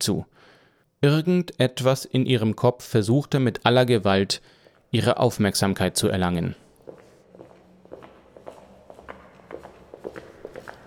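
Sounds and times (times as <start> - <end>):
speech: 0.0 - 6.6
footsteps walking on a hard floor: 6.8 - 10.8.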